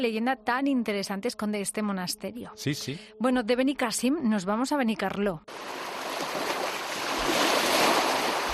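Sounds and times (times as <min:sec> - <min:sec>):
speech: 0:00.0 - 0:05.9
steady ocean surf washing in with low rumbling undertones: 0:05.5 - 0:08.5.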